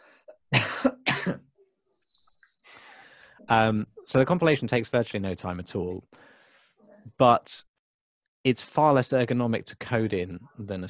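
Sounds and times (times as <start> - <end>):
person coughing: 0.5 - 1.5
speech: 3.5 - 6.3, 7.2 - 7.7, 8.4 - 10.8.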